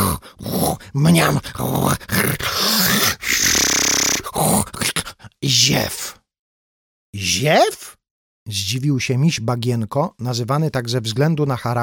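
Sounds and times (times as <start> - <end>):
badger snoring with deep rough growling snorts: 0.0 - 5.1
speech: 0.2 - 3.2, 5.7 - 6.0, 7.1 - 7.9, 8.5 - 11.8.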